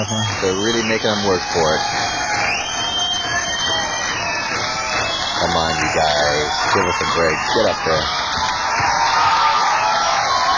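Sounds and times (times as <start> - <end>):
speech: 0.0 - 2.0, 5.4 - 8.5
audience applause and cheering at a live rock club show: 0.0 - 10.5.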